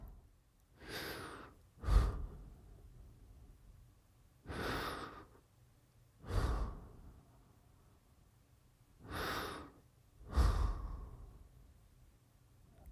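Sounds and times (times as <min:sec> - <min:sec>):
slow relaxed breathing while seated: 0:00.0 - 0:03.6, 0:04.4 - 0:05.6, 0:06.2 - 0:08.1, 0:09.0 - 0:11.8.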